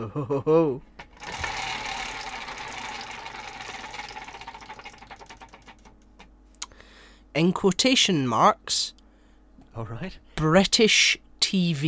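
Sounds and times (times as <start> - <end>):
speech: 0.0 - 1.0, 7.4 - 9.0, 9.8 - 11.8
prize wheel spinning with ratcheting clicks: 1.1 - 6.1.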